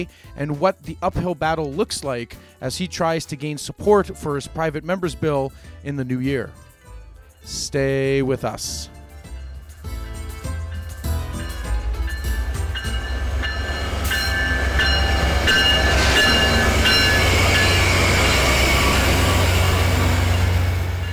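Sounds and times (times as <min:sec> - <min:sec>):
speech: 0:00.0 - 0:06.6, 0:07.4 - 0:09.0
passenger train rolling along tracks in Northwest British Columbia Canada: 0:09.6 - 0:21.1
metallic squeals and clatter from train wheels over rails: 0:10.5 - 0:21.1.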